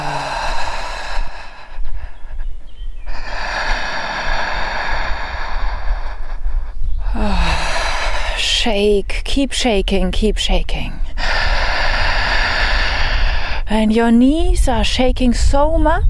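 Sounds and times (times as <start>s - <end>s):
breathing through an open mouth: 0.0s - 8.4s, 11.2s - 13.7s
speech: 8.7s - 11.0s, 13.7s - 16.0s.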